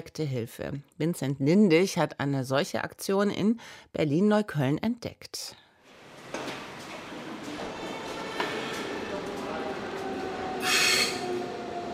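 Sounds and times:
speech: 0.0 - 5.6
commuter train rumbling through a city rail station: 6.0 - 11.9
brief high-pitched train wheel squeal: 10.6 - 11.5.

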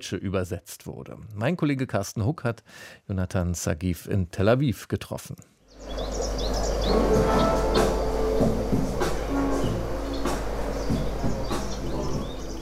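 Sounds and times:
speech: 0.0 - 6.2, 6.9 - 8.5
birds chirping and tweeting: 5.7 - 12.5
electronic music track with low bassline and regular percussive beats: 6.9 - 12.5.

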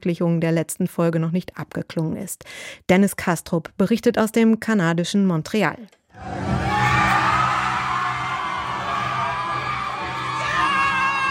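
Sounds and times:
speech: 0.0 - 6.7
packed bar crowd in California screaming and whooping while watching a TV series: 6.2 - 11.2.

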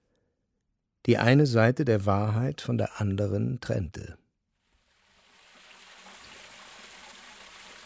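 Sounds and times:
speech: 1.0 - 4.2
fountain water splashing on outdoor stairway: 4.8 - 7.8.

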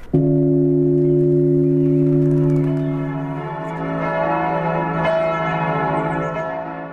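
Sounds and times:
large medieval church bell cast in 1409 tolling over a town and harbour: 0.0 - 6.9.

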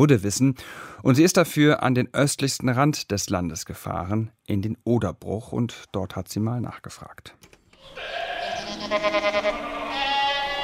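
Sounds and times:
speech: 0.0 - 8.2, 8.9 - 10.1
goats bleating in a barn: 8.0 - 10.6.

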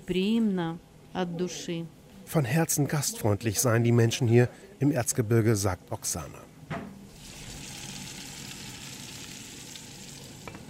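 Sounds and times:
speech: 0.1 - 6.8
potato pancakes frying in hot oil in a pan: 7.1 - 10.6.

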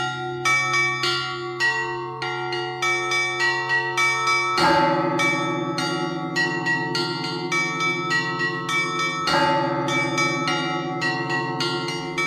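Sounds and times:
rapid small bells of a Russian Orthodox monastery chiming: 0.0 - 12.2
deep bells of a Russian Orthodox monastery striking in heavy accents: 3.4 - 12.2.

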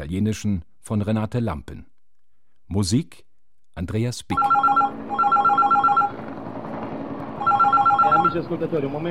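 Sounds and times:
speech: 0.1 - 1.9, 2.7 - 4.5, 8.4 - 9.0
telephone ringing as a call is placed to a news agency: 4.4 - 6.2, 7.4 - 8.5.

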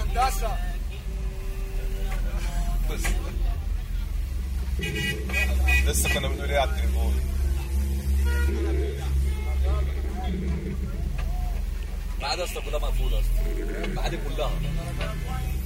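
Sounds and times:
indistinct voices and crowd babble outside a taxi: 0.0 - 15.6
taxi engine rumble: 0.0 - 15.6
car horn toots in dense street traffic: 4.7 - 7.0, 7.7 - 9.9.

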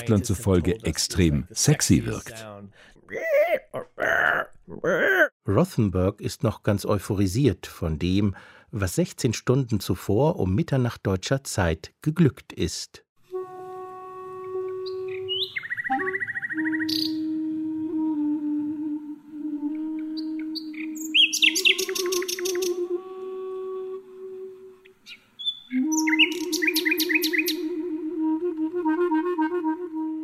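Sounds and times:
speech: 0.0 - 13.0
wind instrument playing long steady tones: 13.2 - 25.0, 25.7 - 30.2
nightingale singing in rapid trills and chirps: 14.8 - 17.3, 20.1 - 22.8, 24.8 - 27.7.

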